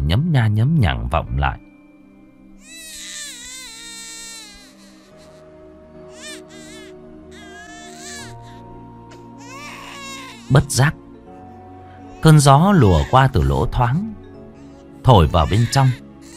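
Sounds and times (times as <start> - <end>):
speech: 0.1 - 1.7, 10.5 - 11.0, 12.2 - 14.2, 15.1 - 16.0
small boy crying upstairs in high whining wails: 2.6 - 5.4, 6.2 - 8.6, 9.4 - 10.5, 12.8 - 13.3, 15.2 - 16.3.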